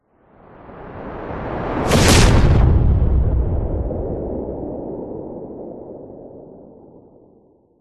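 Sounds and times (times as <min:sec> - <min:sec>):
science fiction impact explosion of spacecraft and missile: 0:01.8 - 0:04.9.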